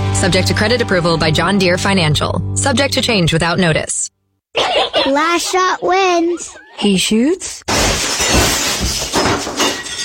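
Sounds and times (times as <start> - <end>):
speech: 0.2 - 7.8
laughter: 4.6 - 6.9
window glass shattering: 7.7 - 10.0.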